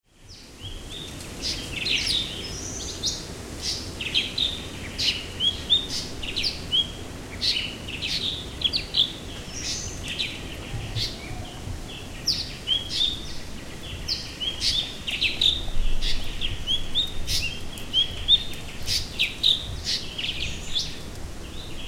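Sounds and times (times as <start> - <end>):
blue-winged leafbird Chloropsis cochinchinensis singing: 0.1 - 21.8.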